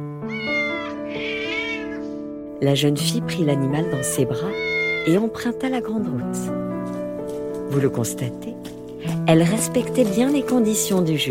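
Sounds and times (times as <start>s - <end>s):
cat meowing: 0.2s - 2.2s, 3.6s - 5.2s
speech: 2.6s - 7.0s, 7.7s - 11.2s.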